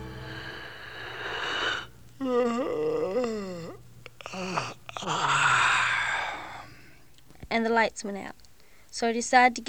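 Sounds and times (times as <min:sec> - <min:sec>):
person yawning: 0:01.2 - 0:06.8
speech: 0:02.2 - 0:03.0, 0:07.6 - 0:09.6.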